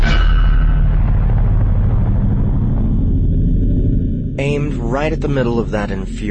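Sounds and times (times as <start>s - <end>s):
loud magical explosion blast with sharp crackling onset: 0.0s - 4.8s
deep rumbling roar: 0.0s - 6.2s
speech: 4.4s - 6.2s.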